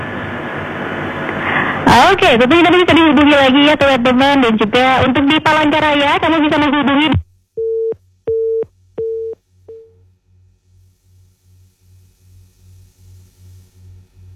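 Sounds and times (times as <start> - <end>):
speech: 1.9 - 7.2
telephone beeps after a disconnected line: 7.6 - 9.9.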